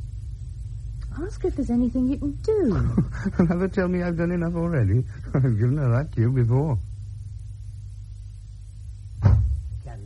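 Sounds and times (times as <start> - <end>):
low rumbling background: 0.0 - 10.0
speech: 1.2 - 6.9
house door slamming shut: 9.2 - 9.8.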